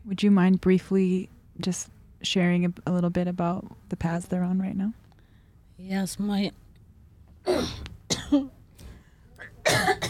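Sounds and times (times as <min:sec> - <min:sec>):
speech: 0:00.1 - 0:05.0, 0:05.8 - 0:06.6, 0:07.4 - 0:08.6
harsh coughing: 0:09.4 - 0:10.0
throat clearing: 0:09.4 - 0:10.0.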